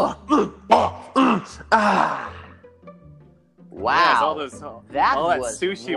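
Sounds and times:
speech: 0.0s - 2.4s, 3.8s - 5.9s
rough throaty throat clearing: 1.1s - 1.6s.

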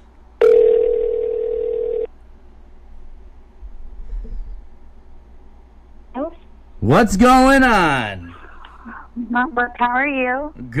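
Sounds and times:
outgoing phone call electronic ring tone: 0.4s - 2.1s
speech: 6.8s - 8.2s, 9.2s - 10.7s.

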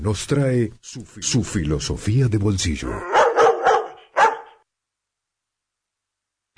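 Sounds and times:
speech: 0.0s - 3.2s
dog barking sharply: 3.0s - 4.6s.

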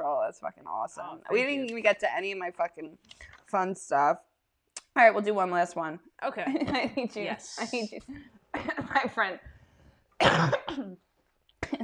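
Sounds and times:
speech: 0.3s - 4.3s, 5.0s - 9.5s, 10.2s - 11.1s
person coughing: 10.2s - 11.0s.

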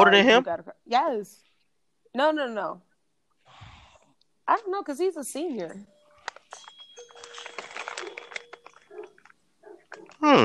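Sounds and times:
speech: 0.0s - 1.5s, 2.1s - 2.9s, 4.5s - 5.9s, 10.2s - 10.4s
crunching and chewing of crisp holiday cookies: 6.3s - 10.3s.

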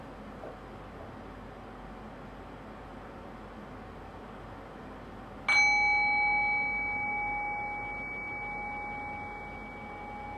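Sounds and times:
meditation bell ringing: 5.5s - 10.3s.

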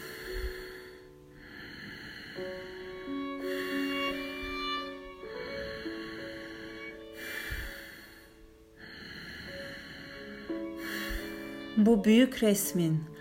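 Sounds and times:
person breathing slowly in and out through the nose: 0.0s - 2.7s, 3.3s - 4.2s, 5.4s - 11.7s
soft sustained ambient music bed: 0.0s - 13.1s
speech: 11.8s - 13.1s.

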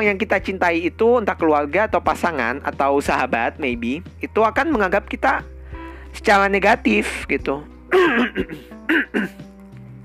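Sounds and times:
speech: 0.0s - 5.5s, 6.1s - 9.5s
person coughing in rough bursts: 7.9s - 9.4s
throat clearing: 7.9s - 9.4s.

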